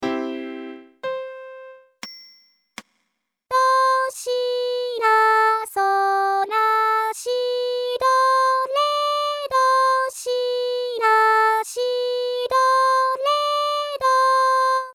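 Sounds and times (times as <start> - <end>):
vocal: 3.5 - 14.9.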